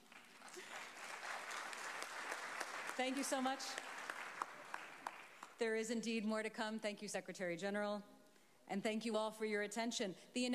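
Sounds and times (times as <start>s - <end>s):
audience applauding at an announcement event: 0.0s - 5.6s
speech: 3.0s - 3.8s, 5.6s - 8.1s, 8.7s - 10.5s.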